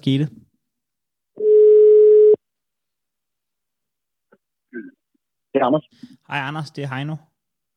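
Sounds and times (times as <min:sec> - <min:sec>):
speech: 0:00.0 - 0:00.4, 0:04.7 - 0:07.3
telephone ringing tone while a call connects: 0:01.4 - 0:02.4.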